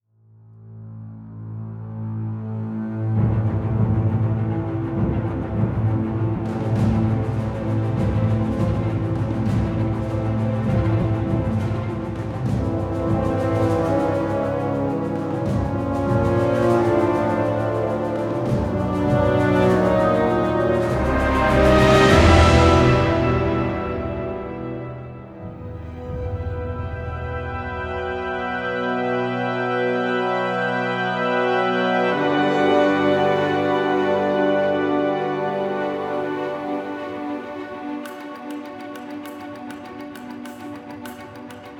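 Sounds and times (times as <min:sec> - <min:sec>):
orchestral music: 0:01.9 - 0:41.7.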